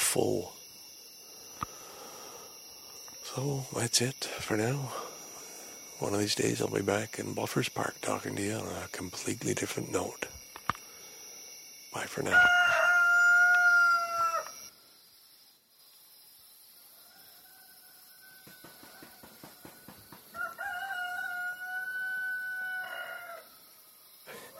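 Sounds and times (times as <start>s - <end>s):
steady insect drone: 0.0s - 24.5s
speech: 0.1s - 0.6s, 3.4s - 5.1s, 6.0s - 10.4s, 11.9s - 12.7s
rooster crowing loudly: 12.2s - 14.7s, 17.0s - 23.8s.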